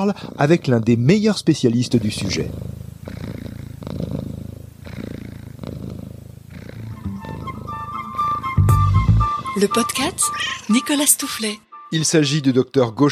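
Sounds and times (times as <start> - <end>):
speech: 0.0 - 2.8, 9.6 - 13.0
domestic cat purring: 0.0 - 8.5, 9.2 - 11.0.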